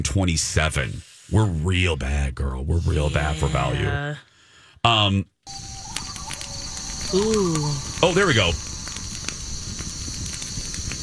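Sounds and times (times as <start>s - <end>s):
speech: 0.0s - 5.8s, 7.1s - 8.7s
campfire crackling with pops and snaps: 5.5s - 11.0s.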